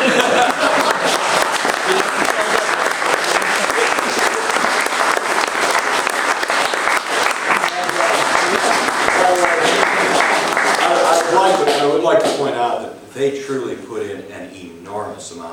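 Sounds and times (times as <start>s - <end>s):
audience applause: 0.0s - 12.6s
laughter: 0.0s - 12.6s.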